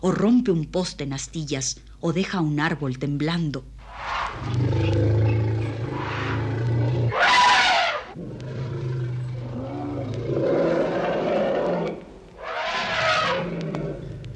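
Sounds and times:
speech: 0.0 - 4.6
enraged elephant roaring: 3.9 - 14.3.

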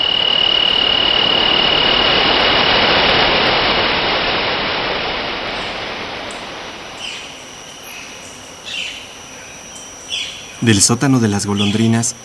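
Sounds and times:
thin insect-like whine: 0.0 - 12.2
roar of a tall 100-metre waterfall: 0.7 - 7.5
sharp bird chirps: 6.9 - 12.2
speech: 10.6 - 12.2.

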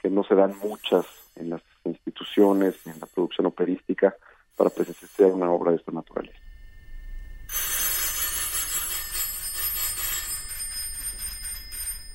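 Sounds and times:
speech: 0.0 - 6.4
several electric doorbells ringing: 7.5 - 12.1.

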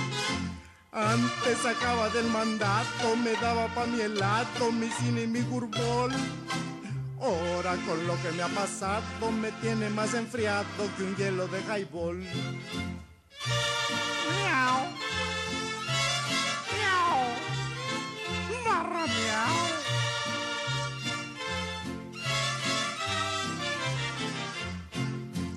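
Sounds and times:
loud steady band music: 0.0 - 6.9, 7.5 - 25.5
speech: 1.0 - 15.1
cat meowing: 14.2 - 15.0, 16.6 - 17.6.

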